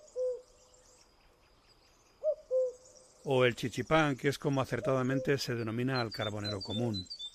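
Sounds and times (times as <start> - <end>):
common cuckoo calling: 0.0 - 0.6, 2.1 - 3.2, 4.6 - 7.3
faint hiss: 0.0 - 7.3
speech: 3.2 - 7.2.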